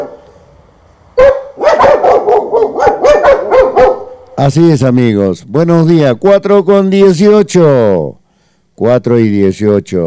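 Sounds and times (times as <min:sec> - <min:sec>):
several dogs barking rapidly in an excited chorus: 0:00.0 - 0:00.3, 0:01.2 - 0:04.4
speech: 0:04.4 - 0:08.2, 0:08.8 - 0:10.0.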